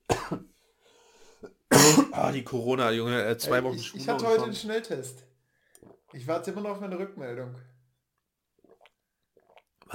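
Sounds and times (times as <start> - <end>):
person coughing: 0.1 - 0.5, 1.7 - 2.2
speech: 2.2 - 5.3, 6.2 - 7.7.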